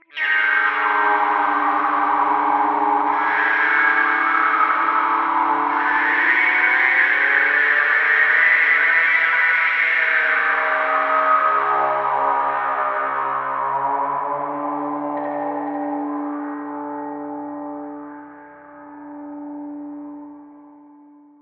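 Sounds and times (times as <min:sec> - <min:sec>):
spooky electric guitar sounds: 0:00.0 - 0:21.4.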